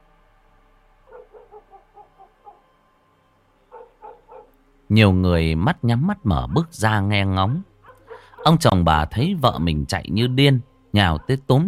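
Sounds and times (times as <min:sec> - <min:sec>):
village dogs barking: 0:01.0 - 0:02.8, 0:03.7 - 0:04.6, 0:07.2 - 0:08.8, 0:11.0 - 0:11.6
speech: 0:04.9 - 0:07.7, 0:08.4 - 0:11.6.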